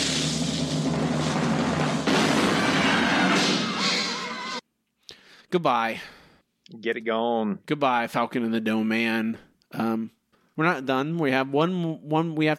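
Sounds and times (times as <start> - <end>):
cannon-fire sound effect blast with low rumble: 0.1 - 4.6
speech: 5.5 - 12.5.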